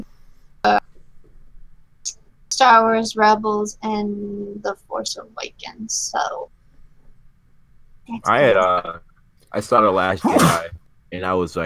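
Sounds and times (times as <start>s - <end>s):
speech: 0.6s - 0.9s, 2.0s - 6.6s, 8.1s - 11.6s
laughter: 8.3s - 9.0s
sneeze: 10.1s - 10.8s.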